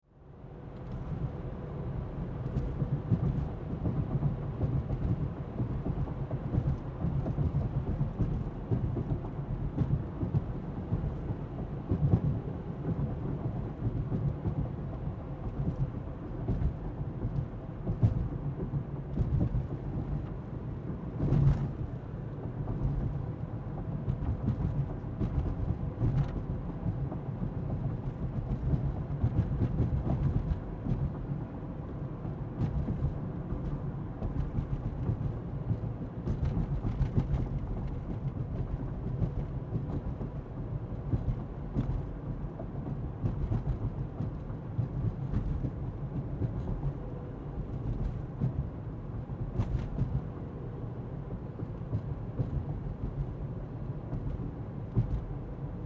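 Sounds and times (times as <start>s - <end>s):
car interior driving: 0.5s - 55.8s.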